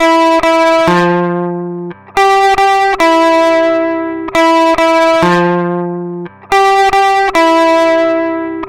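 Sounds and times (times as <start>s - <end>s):
gentle riff through a mid booster: 0.0s - 8.6s.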